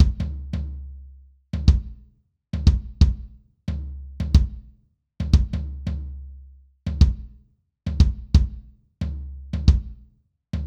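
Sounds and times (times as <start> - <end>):
kick drum: 0.0 - 0.6, 1.6 - 5.8, 6.9 - 10.0
tom drum: 0.0 - 0.8, 1.6 - 2.0, 2.6 - 6.1, 6.9 - 10.0.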